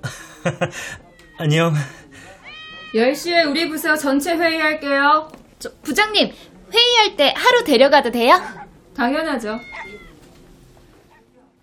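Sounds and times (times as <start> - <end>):
laughter: 0.0 - 1.2
speech: 0.4 - 2.0, 2.9 - 9.7
cat meowing: 1.1 - 1.4, 2.4 - 3.4, 9.4 - 10.3.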